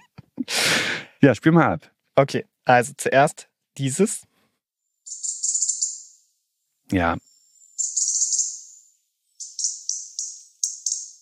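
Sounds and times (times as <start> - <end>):
speech: 1.2 - 4.3, 6.9 - 7.3
bird call with buzzy high-pitched trill and quick ratcheting notes: 5.0 - 6.2, 7.2 - 11.1.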